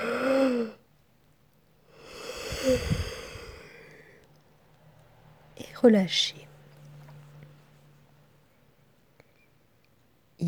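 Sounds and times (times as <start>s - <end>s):
voiced breathy exhale with a falling tone: 1.9s - 4.2s
deep yawn while stretching: 2.0s - 4.1s
speech: 5.8s - 6.5s.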